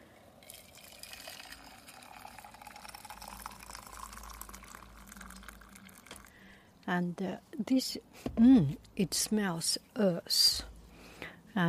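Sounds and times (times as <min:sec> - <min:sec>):
water pouring into a vessel: 0:00.2 - 0:06.5
speech: 0:06.9 - 0:10.7.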